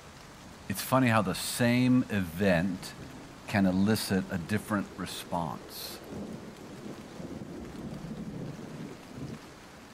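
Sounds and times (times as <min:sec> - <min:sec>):
steady rain pouring: 0:00.0 - 0:09.9
speech: 0:00.8 - 0:06.5
low continuous rumble of thunder: 0:05.6 - 0:09.9.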